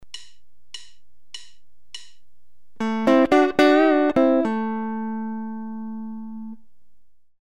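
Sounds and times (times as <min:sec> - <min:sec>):
guitar double-stop bend and release: 0:02.8 - 0:06.6.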